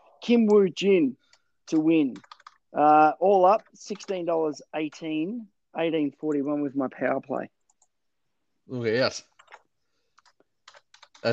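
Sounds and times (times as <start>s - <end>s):
speech: 0.2s - 7.6s, 8.7s - 9.3s
soft keystrokes on a computer keyboard: 1.2s - 2.7s, 3.6s - 4.3s, 9.4s - 11.3s.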